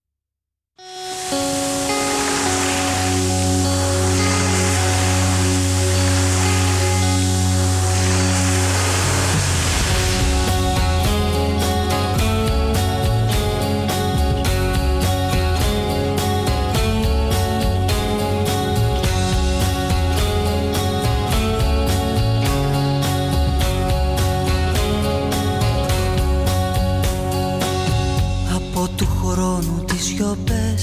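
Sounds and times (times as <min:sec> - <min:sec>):
steady rhythmic pattern of struck or plucked notes: 0:00.8 - 0:30.7
sustained droning tones in a nostalgic Greek song introduction: 0:01.0 - 0:14.0.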